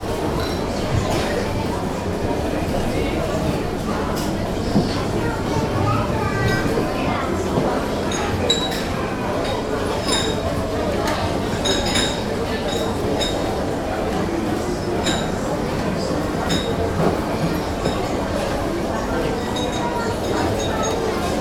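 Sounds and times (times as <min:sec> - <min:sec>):
busy farmers market crowd in Germany: 0:00.0 - 0:21.3.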